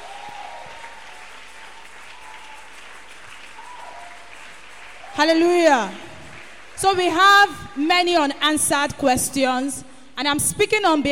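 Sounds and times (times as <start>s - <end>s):
sizable audience applauding panelists: 0.0s - 7.0s
speech: 5.2s - 6.0s, 6.8s - 11.1s.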